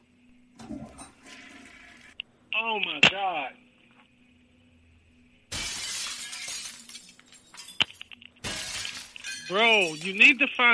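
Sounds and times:
toilet flushing: 0:00.6 - 0:02.2
speech: 0:02.6 - 0:03.6, 0:09.5 - 0:10.7.

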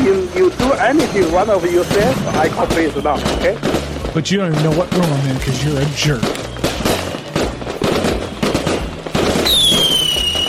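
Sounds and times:
fireworks crackling and popping: 0:00.0 - 0:10.4
shrill whistling firework rocket: 0:00.4 - 0:03.9, 0:06.0 - 0:10.4
speech: 0:00.8 - 0:06.4.

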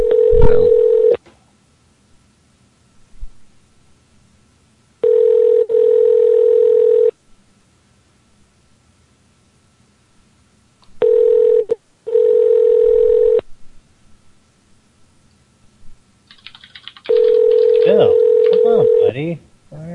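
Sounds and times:
telephone line tones while calling a park office: 0:00.0 - 0:01.2, 0:05.0 - 0:07.1, 0:11.0 - 0:13.4, 0:17.1 - 0:19.1.

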